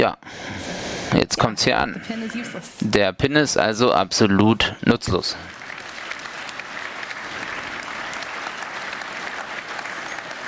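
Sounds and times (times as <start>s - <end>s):
speech: 0.0s - 5.6s
audience applause in a hall: 4.8s - 10.4s.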